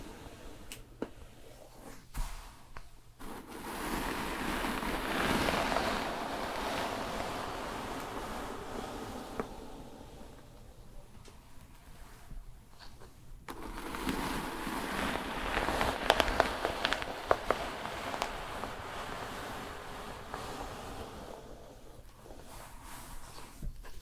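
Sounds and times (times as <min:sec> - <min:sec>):
wet shampoo lathering and scrubbing with crackly squishing: 0:03.2 - 0:11.2, 0:13.5 - 0:23.6.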